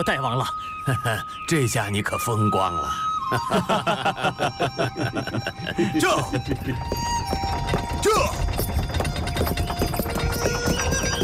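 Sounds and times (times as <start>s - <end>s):
speech: 0.0s - 8.5s
laughter: 3.3s - 6.9s
horse hooves clip-clopping of an approaching horse-drawn carriage: 6.2s - 11.2s.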